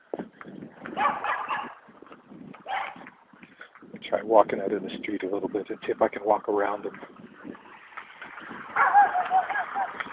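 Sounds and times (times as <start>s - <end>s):
dogs barking outdoors: 0.9s - 1.8s, 2.6s - 3.1s, 8.7s - 10.1s
dogs yelping: 1.0s - 1.8s, 2.6s - 3.0s, 8.6s - 10.1s
speech: 4.1s - 7.2s.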